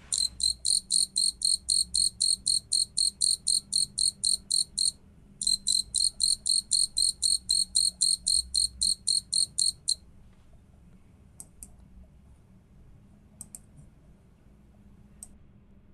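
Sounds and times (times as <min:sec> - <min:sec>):
Japanese burrowing cricket chirping: 0:00.0 - 0:10.0
faint low noise: 0:00.0 - 0:15.9.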